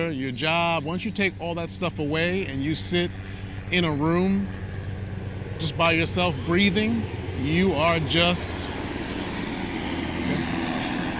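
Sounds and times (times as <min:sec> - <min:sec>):
speech: 0:00.0 - 0:04.6, 0:05.6 - 0:08.8
helicopter flying overhead: 0:00.0 - 0:11.1.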